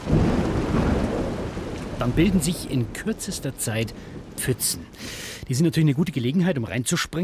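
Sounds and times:
deep sustained rumble of thunder: 0:00.0 - 0:06.8
steady dense rainfall: 0:00.0 - 0:07.2
speech: 0:02.0 - 0:07.2.

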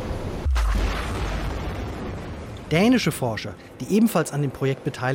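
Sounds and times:
steady rumbling underwater background: 0:00.2 - 0:02.6
seismic airgun air blast booms sending sound waves into the seabed: 0:00.4 - 0:02.3
speech: 0:02.7 - 0:05.1.

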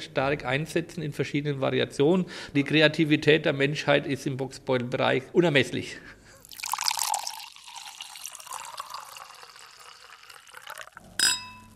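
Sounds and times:
speech: 0:00.0 - 0:06.2
wine pouring into a glass: 0:06.4 - 0:11.7
glass clink: 0:06.6 - 0:11.7.

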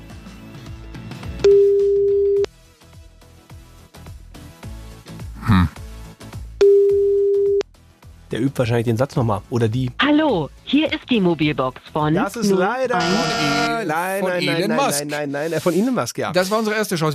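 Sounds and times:
outgoing phone call ringback tones: 0:01.4 - 0:02.5, 0:06.6 - 0:07.6, 0:12.9 - 0:13.8
speech: 0:08.4 - 0:17.1.

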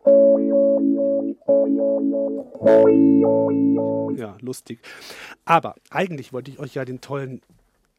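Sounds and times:
electric guitar played through a talking wah pedal: 0:00.0 - 0:04.2
speech: 0:01.5 - 0:07.6.

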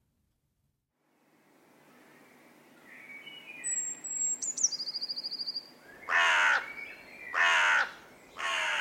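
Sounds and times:
bird chirps: 0:02.2 - 0:07.4
thin trilling bird call: 0:03.0 - 0:08.0
group of crows cawing on a field: 0:06.1 - 0:06.7, 0:07.3 - 0:08.7.

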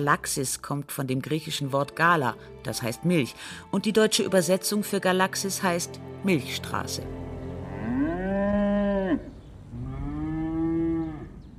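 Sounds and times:
speech: 0:00.0 - 0:07.2
cow mooing with long harmonic bellows: 0:07.5 - 0:11.4.

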